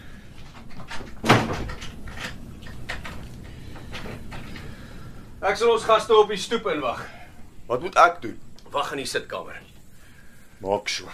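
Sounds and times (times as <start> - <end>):
door being shut with a sharp loud thud: 0.8 - 3.2
speech: 5.4 - 9.7, 10.6 - 11.1.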